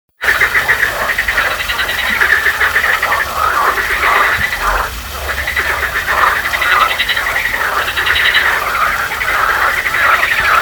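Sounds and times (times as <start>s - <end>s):
marsh frog calling: 0.2s - 10.6s.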